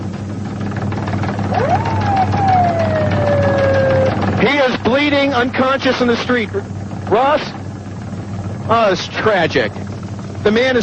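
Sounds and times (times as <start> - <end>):
steady low engine rumble: 0.0 - 10.8
emergency siren wailing: 1.5 - 4.4
speech: 5.0 - 7.6, 8.7 - 9.8, 10.4 - 10.8.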